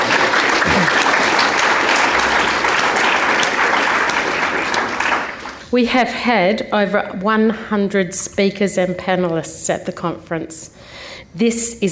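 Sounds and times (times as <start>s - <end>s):
audience applause: 0.0s - 5.7s
speech: 5.7s - 11.9s.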